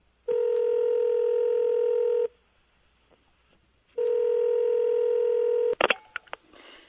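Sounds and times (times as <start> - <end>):
telephone ringback tone as a steady electronic buzz: 0.3 - 2.3, 4.0 - 5.8.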